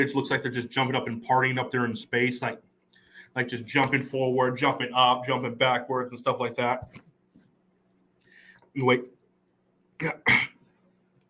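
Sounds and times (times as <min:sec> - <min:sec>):
speech: 0:00.0 - 0:02.7, 0:03.3 - 0:07.1, 0:08.8 - 0:09.2, 0:10.0 - 0:10.5
hiccups: 0:10.0 - 0:10.6.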